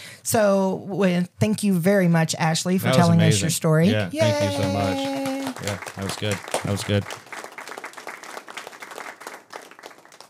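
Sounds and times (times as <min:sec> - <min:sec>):
speech: 0:00.3 - 0:07.2
crowd applauding: 0:04.0 - 0:10.2.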